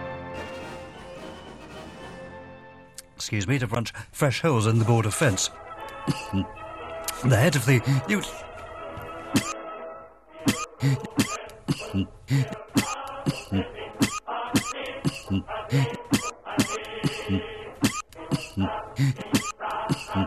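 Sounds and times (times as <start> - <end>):
speech: 3.2 - 6.6, 7.2 - 8.5, 9.3 - 9.5, 10.8 - 11.3, 11.9 - 12.5
coughing: 6.0 - 6.5, 9.3 - 9.6, 10.4 - 20.2
throat clearing: 6.1 - 6.5, 10.5 - 16.3, 17.1 - 20.2.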